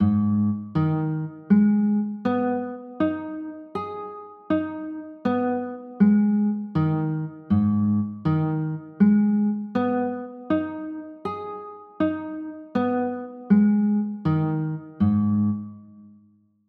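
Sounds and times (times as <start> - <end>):
A flat minor chords: 0.0 - 16.0.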